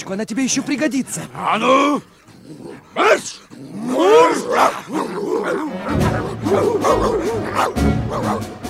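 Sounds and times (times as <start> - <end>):
speech: 0.0 - 8.6
dogs howling and whining: 1.4 - 8.6
several dogs barking and yapping: 2.7 - 8.6.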